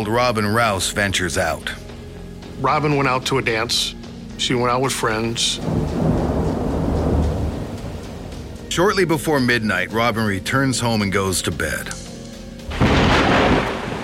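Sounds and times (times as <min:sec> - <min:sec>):
speech: 0:00.0 - 0:01.9, 0:02.6 - 0:06.0, 0:08.8 - 0:12.0
deep rumbling thunder: 0:05.5 - 0:08.7, 0:12.7 - 0:14.0
heavy rain at night: 0:05.6 - 0:08.6, 0:12.7 - 0:14.0.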